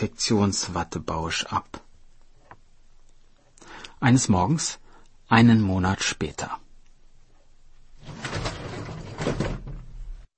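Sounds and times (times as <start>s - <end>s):
speech: 0.0s - 1.8s, 4.0s - 6.6s
door sliding or swinging open with a scraping rumbling rush: 8.0s - 10.3s.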